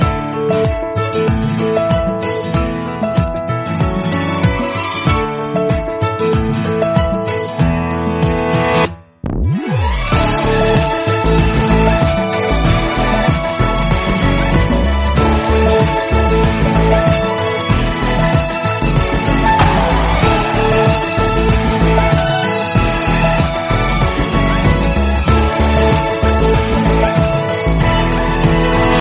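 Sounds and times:
rhythmic background music: 0.0 - 29.0.

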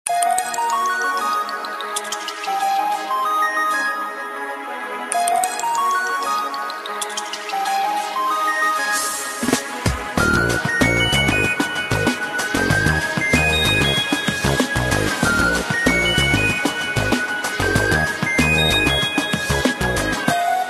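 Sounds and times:
Nokia N91 phone ringtone: 0.1 - 4.5, 5.1 - 9.6, 10.2 - 20.6.

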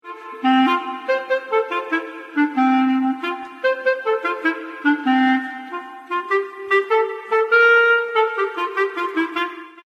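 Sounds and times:
longer flute tune ringtone: 0.1 - 9.4.

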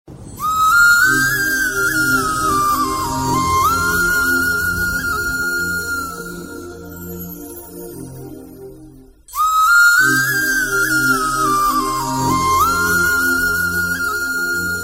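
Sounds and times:
romantic background music: 0.4 - 14.8.

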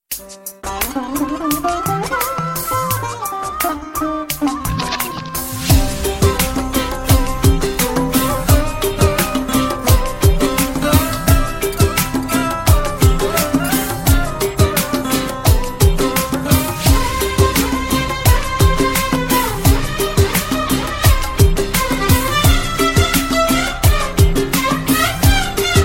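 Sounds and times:
sitar ringtone: 0.6 - 25.8.

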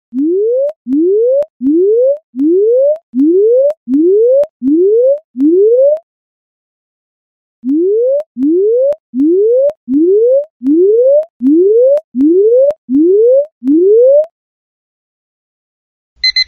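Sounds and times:
Samsung S4 alarm ringtone: 0.1 - 6.0, 7.7 - 14.3.

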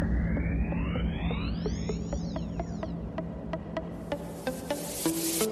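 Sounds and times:
electro ringtone: 0.0 - 5.4.

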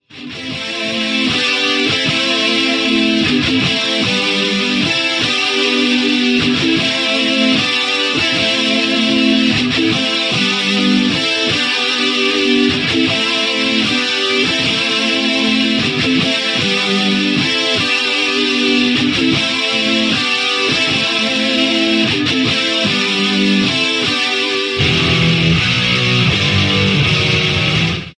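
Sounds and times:
guitar intro: 0.0 - 28.1.

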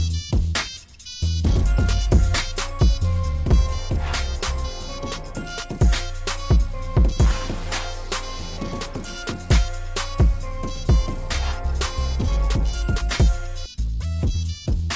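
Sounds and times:
remix music ringtone: 0.0 - 14.9.

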